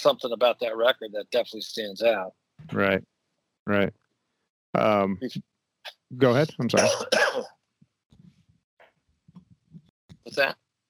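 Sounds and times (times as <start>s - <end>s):
speech: 0.0s - 3.1s, 3.7s - 4.0s, 4.7s - 7.6s, 10.3s - 10.6s
person coughing loudly: 6.8s - 7.5s.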